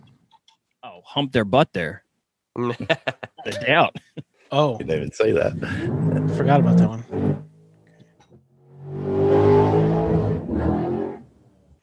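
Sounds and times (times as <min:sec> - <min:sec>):
speech: 0:00.9 - 0:02.0, 0:02.6 - 0:07.4
laughter: 0:02.6 - 0:06.6
drag racing car engine idling and revving: 0:05.2 - 0:07.5, 0:08.6 - 0:11.4.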